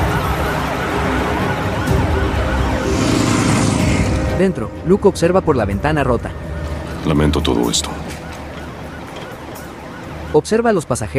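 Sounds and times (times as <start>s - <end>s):
several police car sirens wailing on a highway: 0.0s - 11.1s
steady rumble of road traffic on a highway: 0.0s - 11.1s
speech: 4.4s - 8.2s, 10.3s - 11.1s.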